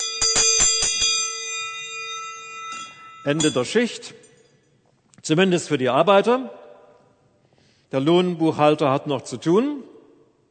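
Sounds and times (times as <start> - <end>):
bell ringing with bright metallic tone: 0.0 - 4.8
speech: 3.2 - 4.2, 5.2 - 6.6, 7.9 - 9.9.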